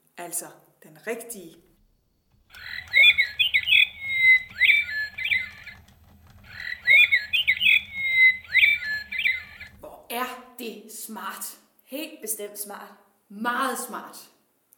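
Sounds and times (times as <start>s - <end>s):
speech: 0.2s - 1.7s, 10.1s - 14.3s
mechanical toy nightingale singing a warbling trill: 2.4s - 9.8s.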